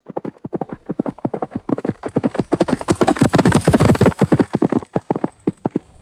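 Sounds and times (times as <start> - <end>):
horse galloping past on hard dirt: 0.0 - 6.0.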